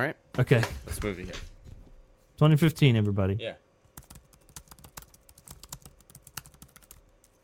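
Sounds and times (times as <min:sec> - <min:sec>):
speech: 0:00.0 - 0:01.5, 0:02.4 - 0:03.6
rapid typing on a 2015-model laptop keyboard: 0:04.0 - 0:07.4.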